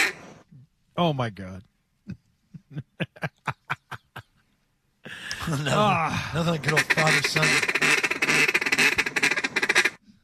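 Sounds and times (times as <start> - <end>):
duck quacking loudly and rapidly: 0.0 - 0.2, 6.4 - 10.0
speech: 1.0 - 3.6, 5.5 - 7.9
laughter: 2.1 - 4.4, 5.1 - 7.5.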